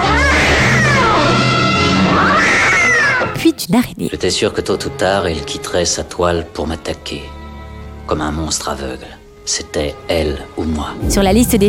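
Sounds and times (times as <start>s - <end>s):
cat yowling in a film excerpt: 0.0s - 3.4s
speech: 3.7s - 7.4s, 8.1s - 11.6s
dense rumbling background: 11.0s - 11.6s.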